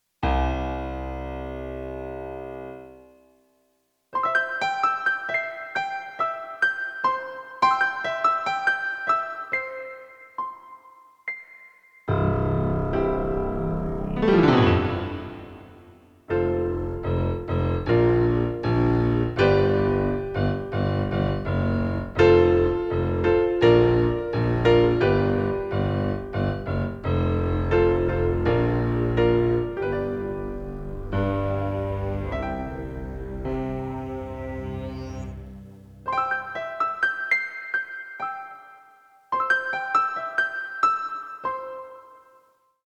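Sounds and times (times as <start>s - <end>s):
piano space prelude: 0.2s - 3.5s, 4.1s - 42.6s.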